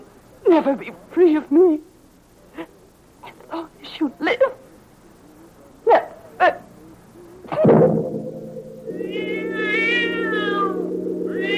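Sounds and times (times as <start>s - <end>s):
speech: 0.6s - 1.9s
low drone: 7.3s - 11.5s
sharp knocks and a heavier thud: 7.5s - 8.3s
cat meowing: 9.1s - 10.8s.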